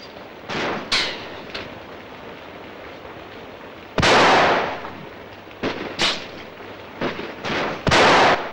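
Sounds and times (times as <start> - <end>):
gunfire from a policeman shooting: 0.5 - 1.4, 4.0 - 8.5.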